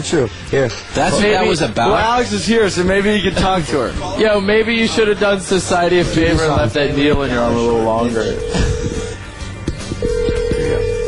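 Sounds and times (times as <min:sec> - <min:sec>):
speech: 0:00.0 - 0:09.1
noise: 0:00.0 - 0:11.0
telephone ringback tone during an outgoing call: 0:08.2 - 0:09.3, 0:10.0 - 0:11.0.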